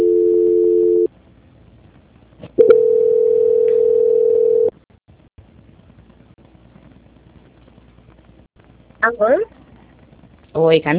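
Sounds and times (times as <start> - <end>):
telephone line tone during a call transfer: 0.0 - 1.1, 2.6 - 4.7
speech: 9.1 - 9.6, 10.6 - 10.9.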